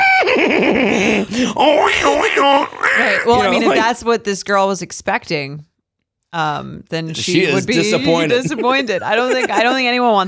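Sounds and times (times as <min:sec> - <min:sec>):
laughter: 0:00.0 - 0:04.0, 0:07.1 - 0:10.2
person vocally imitating a horse's neigh: 0:00.9 - 0:03.7
speech: 0:00.9 - 0:05.7, 0:06.3 - 0:10.2.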